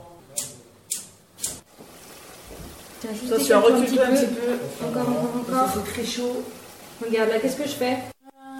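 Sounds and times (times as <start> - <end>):
gas stove igniter clicking in a kitchen as the burner is lit: 0.4 - 1.6
speech: 3.0 - 8.1.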